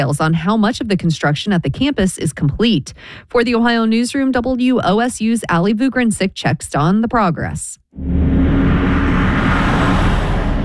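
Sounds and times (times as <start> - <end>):
speech: 0.0 - 8.5
heavy trucks rumbling past on a rural road: 8.0 - 10.6.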